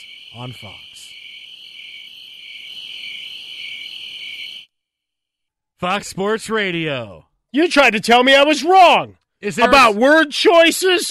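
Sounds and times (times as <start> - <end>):
speech: 0.0 - 0.9, 5.8 - 11.0
dense chorus of crickets chirping: 0.0 - 4.8.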